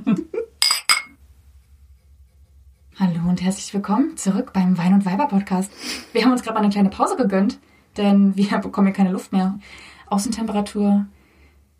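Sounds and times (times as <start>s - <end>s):
glasses clinking in a toast: 0.6s - 1.2s
speech: 3.0s - 11.2s.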